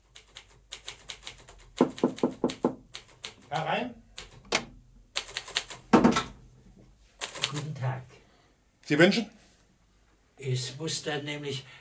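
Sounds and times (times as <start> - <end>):
light quick tapping on a door: 1.8 - 2.9, 5.9 - 6.4
speech: 3.5 - 4.0, 8.9 - 9.4, 10.5 - 11.7.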